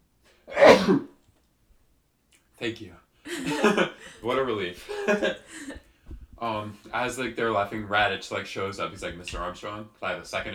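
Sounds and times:
person sneezing: 0.5 - 1.1
speech: 0.9 - 1.1, 2.6 - 5.8, 6.4 - 10.5
laughter: 3.3 - 5.9.

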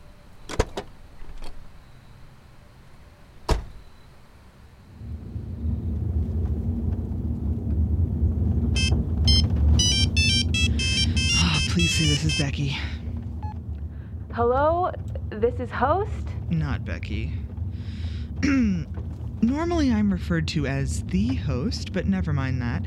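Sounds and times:
car engine rumble: 0.0 - 22.8
phone ringtone bright electronic melody: 8.8 - 12.7
speech: 12.0 - 13.0, 14.4 - 17.4, 18.4 - 22.8.

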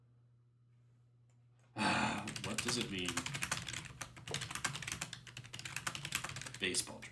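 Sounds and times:
rapid clattery computer keyboard typing: 2.2 - 7.1
speech: 2.4 - 3.5, 6.6 - 7.1.

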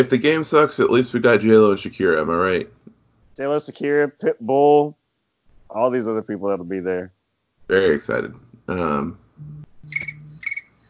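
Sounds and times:
speech: 0.0 - 2.8, 3.4 - 5.0, 5.7 - 9.7
low hum: 9.3 - 10.5
phone notification chirps: 9.4 - 10.8.

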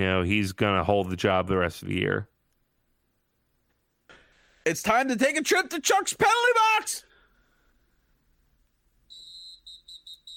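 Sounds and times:
speech: 0.0 - 2.3, 4.7 - 7.1
shrill whistle blowing: 9.1 - 10.3.

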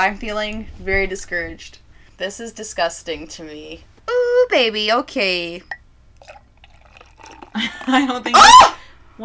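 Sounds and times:
speech: 0.0 - 6.4, 7.6 - 9.2
drips: 5.7 - 7.9
drink being poured and spilling over glass: 6.2 - 7.7.

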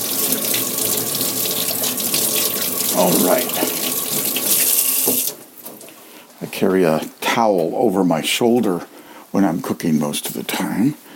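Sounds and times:
tap water running into a sink while washing hands: 0.0 - 5.9
person exclaiming and muttering: 2.9 - 3.8
speech: 3.0 - 3.8, 6.6 - 11.1.

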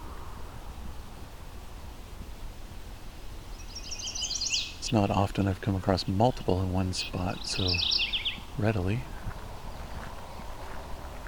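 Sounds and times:
steady outdoor wind: 0.0 - 11.2
chestnut-sided warbler singing: 3.0 - 11.2
speech: 4.9 - 9.1.

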